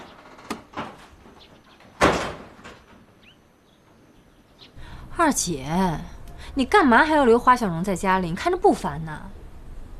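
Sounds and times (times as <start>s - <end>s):
door knocks and rattles: 0.0s - 3.2s
door slamming shut: 1.9s - 3.1s
speech: 5.2s - 9.4s.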